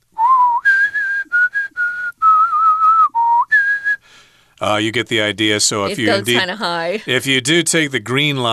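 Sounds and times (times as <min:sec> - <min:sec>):
person whistling the melody of a piano nocturne: 0:00.2 - 0:04.2
speech: 0:04.6 - 0:08.5
laughter: 0:05.8 - 0:07.4.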